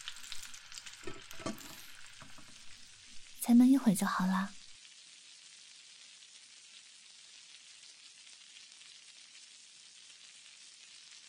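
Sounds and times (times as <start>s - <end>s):
fish sizzling in a hot pan: 0.0s - 11.2s
speech: 3.5s - 4.6s.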